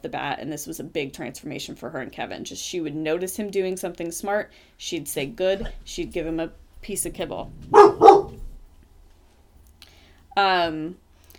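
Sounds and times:
speech: 0.0 - 8.0, 10.4 - 11.0
dog barking: 7.7 - 8.5.

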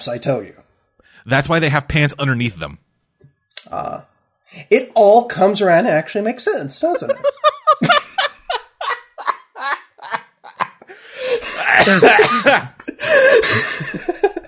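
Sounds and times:
speech: 0.0 - 0.6, 1.2 - 2.8, 3.6 - 7.4, 11.8 - 14.2
laughter: 6.8 - 14.4
person coughing fit with raspy hacking: 11.4 - 14.0.

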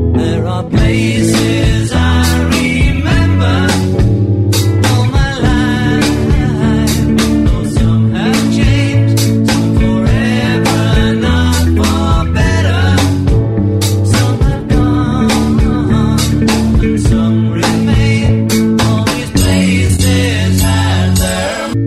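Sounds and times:
1960s-style pop-rock song with male lead vocal: 0.1 - 21.8.

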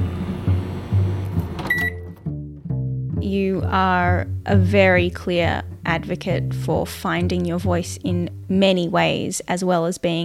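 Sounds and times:
microwave oven humming while heating a drink: 0.0 - 2.1
bright electronic microwave beep: 1.6 - 2.2
speech: 3.2 - 10.2.

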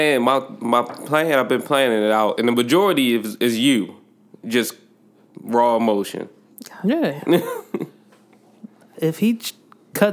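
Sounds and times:
speech: 0.0 - 4.8, 5.4 - 7.9, 9.0 - 10.1
rough coughs: 7.3 - 7.9
soft brief throat-clearing: 7.4 - 7.9.

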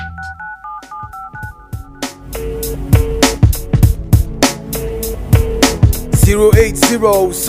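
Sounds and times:
touch-tone phone dialing beeps: 0.0 - 2.1
punchy drum beat and music: 0.0 - 7.4
speech: 6.3 - 7.4.

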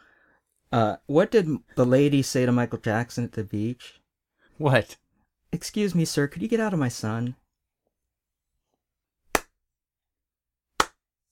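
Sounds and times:
speech: 0.7 - 4.0, 4.6 - 7.4
slow sharp hand claps from one person: 9.3 - 9.6, 10.8 - 11.0.

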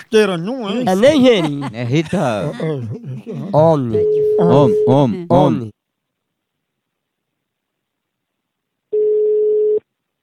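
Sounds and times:
laughter: 0.0 - 5.3
speech: 0.1 - 5.8
electronic telephone ring tone for an incoming call: 4.0 - 5.0.

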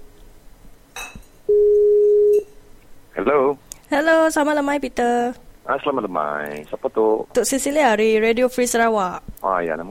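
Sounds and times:
electronic telephone ringback tone on outgoing call: 1.5 - 2.5
speech: 4.3 - 9.8.

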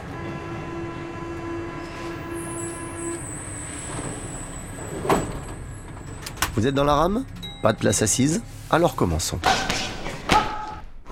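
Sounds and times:
metro train rolling along rails with motor whine: 0.0 - 9.2
thin high squeal of metro train: 1.8 - 6.2
speech: 6.6 - 9.7.

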